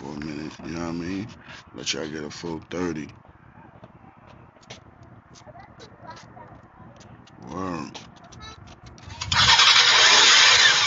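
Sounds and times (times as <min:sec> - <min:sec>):
speech: 0:00.8 - 0:03.3
engine cranking and starting up: 0:09.1 - 0:10.8.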